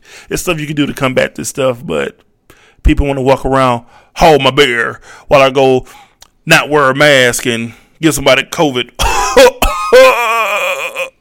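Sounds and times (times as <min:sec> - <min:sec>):
speech: 0:00.3 - 0:11.1
sharp loud coughs and strained throaty hack: 0:09.0 - 0:11.1.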